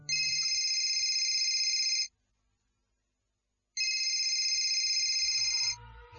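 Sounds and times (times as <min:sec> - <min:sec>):
mobile phone ringing with electronic bursts: 0:00.0 - 0:02.1, 0:03.8 - 0:05.8.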